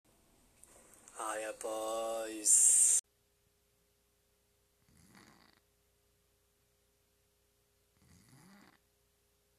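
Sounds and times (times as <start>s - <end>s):
speech: 1.2s - 2.6s
loud rasping snores: 4.9s - 5.6s, 8.0s - 8.8s.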